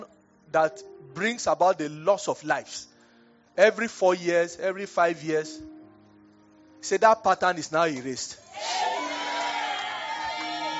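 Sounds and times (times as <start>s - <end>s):
speech: 0.5s - 2.9s, 3.6s - 5.7s, 6.8s - 8.9s
congregation shouting amen during a church service: 8.4s - 10.7s.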